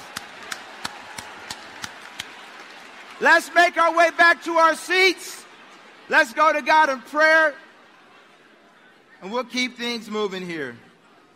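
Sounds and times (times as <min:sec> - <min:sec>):
audience clapping: 0:00.0 - 0:05.2
low noise: 0:00.0 - 0:11.3
speech: 0:03.2 - 0:05.4, 0:06.1 - 0:07.6, 0:09.2 - 0:10.8.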